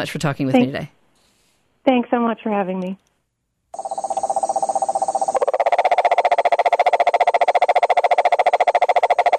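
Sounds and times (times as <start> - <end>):
speech: 0.0 - 1.0, 1.8 - 3.1, 3.7 - 4.0
male cane toad giving a loud steady trill: 3.8 - 9.3.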